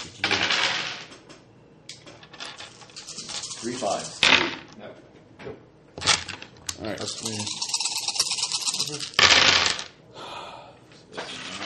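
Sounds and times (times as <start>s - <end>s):
dice rattling and clattering across a hard surface: 0.0s - 1.2s, 1.9s - 4.8s, 6.0s - 9.9s, 11.2s - 11.6s
speech: 3.6s - 5.6s, 6.8s - 7.6s, 8.8s - 9.8s.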